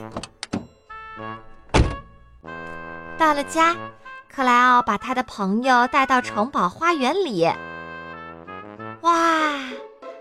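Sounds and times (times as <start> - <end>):
car rear door opening with quick knocks: 1.4 - 2.2
car rear door shutting with a heavy thunk: 1.5 - 2.2
speech: 3.2 - 7.6, 9.0 - 9.4.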